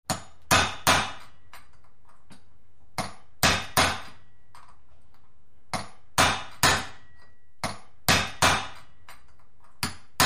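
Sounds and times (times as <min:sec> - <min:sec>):
hammer on metal: 0:00.1 - 0:01.7, 0:03.0 - 0:04.3, 0:05.7 - 0:09.2, 0:09.8 - 0:10.2.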